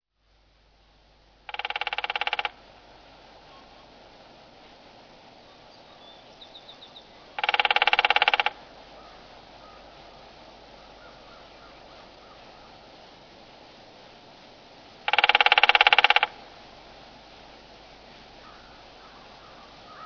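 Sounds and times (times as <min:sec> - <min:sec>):
woodpecker tapping: 0:01.5 - 0:02.6, 0:07.3 - 0:09.8, 0:15.1 - 0:16.4.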